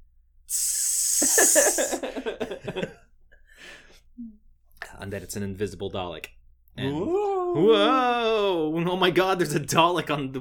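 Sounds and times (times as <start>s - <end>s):
spray paint can hissing: 0.5s - 2.0s
speech: 1.4s - 3.0s, 5.0s - 10.3s.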